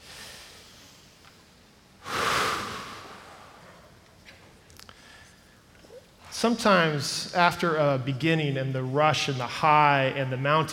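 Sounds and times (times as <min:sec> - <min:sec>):
deep breath: 0:00.0 - 0:01.2, 0:02.0 - 0:03.9, 0:04.8 - 0:05.8
speech: 0:06.4 - 0:10.7.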